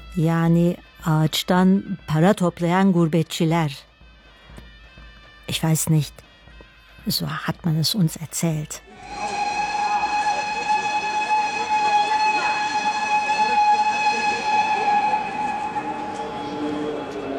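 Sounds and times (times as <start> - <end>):
speech: 0.2 - 3.9, 5.5 - 6.3, 7.0 - 9.3
train at a railway platform giving off a high whistling tone: 8.8 - 17.3.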